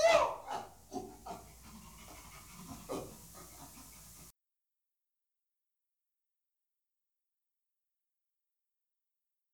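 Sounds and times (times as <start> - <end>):
chimpanzee Pan troglodytes making breathy panting grunts: 0.0 - 4.3.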